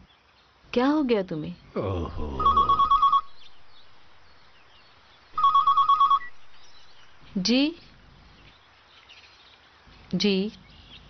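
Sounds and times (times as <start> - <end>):
speech: 0.7 - 2.8, 7.4 - 7.9, 10.1 - 10.6
telephone ringing with a rapid trilling electronic bell: 2.4 - 3.4, 5.4 - 6.4.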